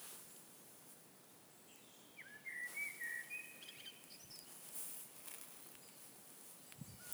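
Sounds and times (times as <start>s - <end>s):
common blackbird song, Turdus merula: 1.7s - 4.5s.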